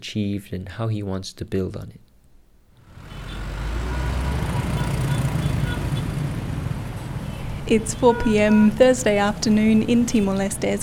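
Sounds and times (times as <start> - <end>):
speech: 0.0 - 2.0, 7.7 - 10.8
cars passing in busy street traffic: 2.8 - 10.8.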